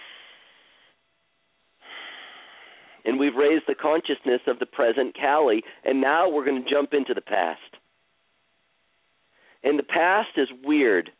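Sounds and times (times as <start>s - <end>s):
deep breath taken in a guided relaxation exercise: 0.0s - 1.0s, 1.8s - 3.0s, 9.3s - 9.6s
speech: 3.0s - 7.8s, 9.6s - 11.1s.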